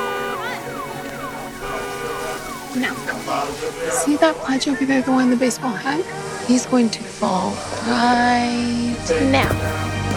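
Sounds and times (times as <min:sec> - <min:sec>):
car alarm going off: 0:00.0 - 0:06.2
speech: 0:02.8 - 0:10.0.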